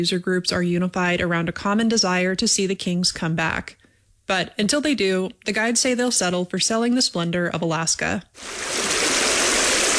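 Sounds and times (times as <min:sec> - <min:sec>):
speech: 0:00.0 - 0:09.0
rushing river water flowing: 0:08.4 - 0:09.9.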